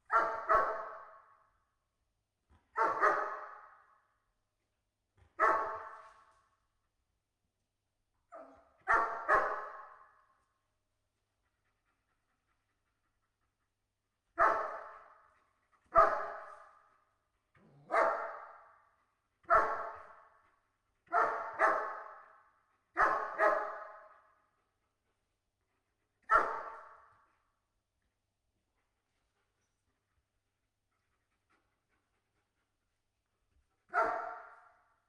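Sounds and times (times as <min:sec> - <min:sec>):
distant German shepherd barking slowly indoors: 0:00.1 - 0:01.2, 0:02.8 - 0:03.8, 0:05.4 - 0:06.0, 0:08.8 - 0:10.2, 0:14.4 - 0:15.2, 0:15.9 - 0:16.6, 0:17.9 - 0:18.8, 0:19.5 - 0:20.3, 0:21.1 - 0:22.3, 0:23.0 - 0:24.2, 0:26.3 - 0:27.2, 0:33.9 - 0:34.8.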